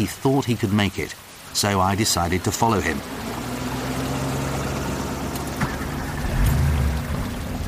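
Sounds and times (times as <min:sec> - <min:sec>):
speech: 0:00.0 - 0:03.3
deep flood water washing and splashing around a car: 0:00.0 - 0:07.6
car engine humming while driving slowly through deep flood water: 0:01.5 - 0:07.6.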